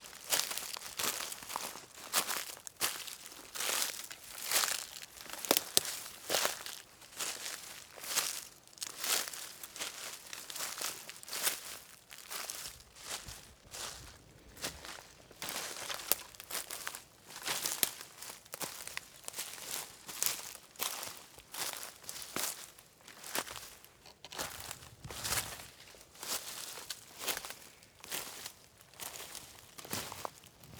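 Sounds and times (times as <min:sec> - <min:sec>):
footsteps on dry leaves: 0:00.0 - 0:30.7
twigs snapping underfoot: 0:24.0 - 0:25.8.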